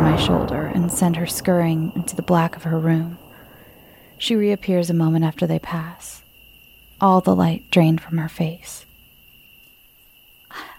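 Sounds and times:
wind: 0:00.0 - 0:06.2
crickets chirping on a summer night: 0:00.0 - 0:10.7
speech: 0:00.2 - 0:03.2, 0:04.2 - 0:06.2, 0:07.0 - 0:08.9.

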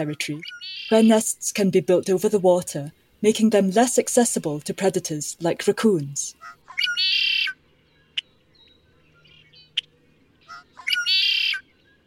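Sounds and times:
speech: 0:00.0 - 0:06.6
Adélie Penguin giving harsh braying squawks rich in overtones: 0:06.4 - 0:07.6, 0:10.4 - 0:11.6.

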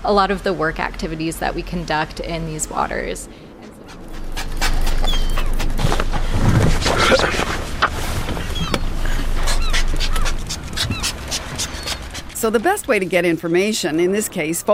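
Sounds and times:
speech: 0:00.0 - 0:04.0, 0:12.4 - 0:14.7
faint engine rumble: 0:00.0 - 0:14.7
sea lions barking in feeding frenzy: 0:03.6 - 0:13.8.

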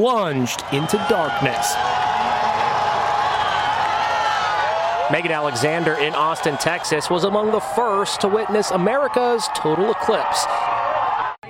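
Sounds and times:
speech: 0:00.0 - 0:02.3, 0:05.1 - 0:10.9
large outdoor crowd cheering at total solar eclipse: 0:00.0 - 0:11.4.

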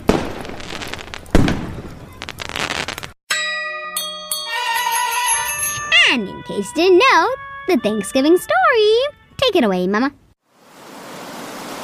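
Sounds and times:
fireworks from a massive display in Britain exploding: 0:00.0 - 0:03.2
bright ringing chime-like tones: 0:03.3 - 0:09.4
speech: 0:06.1 - 0:10.2.

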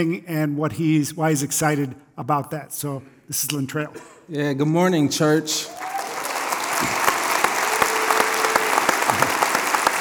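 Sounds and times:
speech: 0:00.0 - 0:06.0
applause from a sizable audience: 0:05.6 - 0:09.9.

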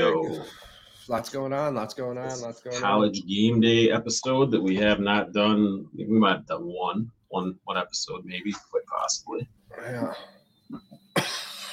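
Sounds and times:
speech: 0:00.3 - 0:11.4
hacking cough breaking into a harsh breathy rasp: 0:09.7 - 0:11.7.

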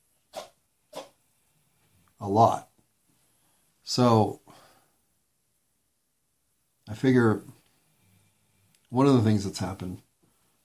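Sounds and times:
cat sneezing: 0:00.3 - 0:01.1
speech: 0:02.2 - 0:02.7, 0:03.9 - 0:04.4, 0:06.9 - 0:07.6, 0:08.9 - 0:10.0.

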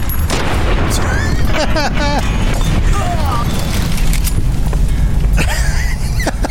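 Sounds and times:
pistol gunshots in a video game: 0:00.0 - 0:04.6
laughter: 0:00.9 - 0:03.6, 0:05.4 - 0:06.4.

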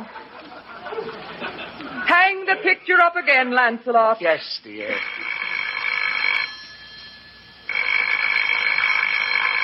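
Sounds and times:
laughter: 0:00.0 - 0:02.8
speech: 0:02.5 - 0:05.2
telephone bell ringing: 0:04.9 - 0:09.6.

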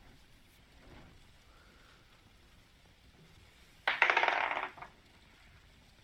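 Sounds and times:
die rolled during a tabletop role-playing game: 0:03.9 - 0:04.9.

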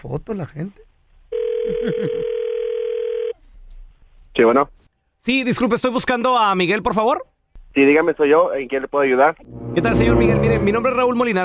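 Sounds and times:
speech: 0:00.0 - 0:00.8, 0:01.7 - 0:02.4, 0:04.4 - 0:11.4
telephone ringback tone over a phone line: 0:01.3 - 0:03.4
laughter: 0:01.7 - 0:02.3.

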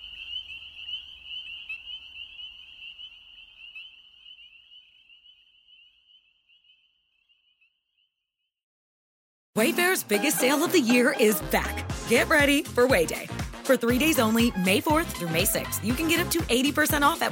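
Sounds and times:
spring peeper chorus peeping: 0:00.0 - 0:07.5
speech: 0:09.6 - 0:17.2.

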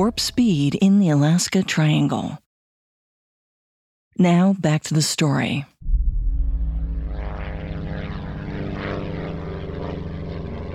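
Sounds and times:
speech: 0:00.0 - 0:02.4, 0:04.2 - 0:05.7
small propeller plane droning: 0:06.0 - 0:10.7.

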